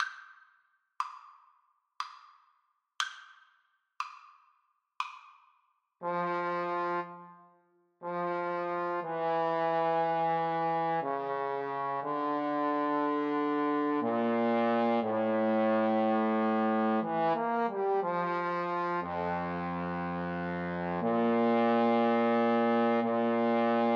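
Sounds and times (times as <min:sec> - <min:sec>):
adagio trombone duet: 0:06.0 - 0:07.2, 0:08.0 - 0:23.9.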